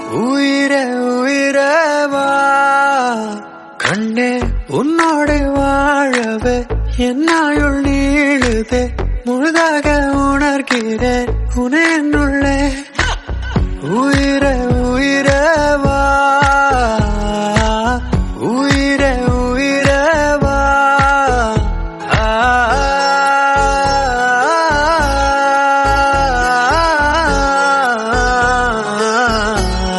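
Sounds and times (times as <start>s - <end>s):
man singing a cover song in Tamil: 0.0s - 29.9s.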